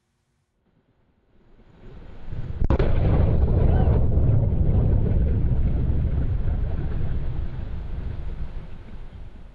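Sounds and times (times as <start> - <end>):
rocket exploding on a launch pad: 2.3 - 9.3
low rumble of a rocket on a launch pad: 2.4 - 9.5.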